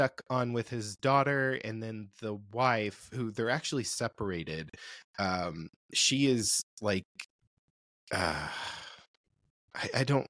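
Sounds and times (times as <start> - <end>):
speech: 0.0 - 7.3, 8.1 - 8.8, 9.8 - 10.2
person yawning: 8.1 - 9.0.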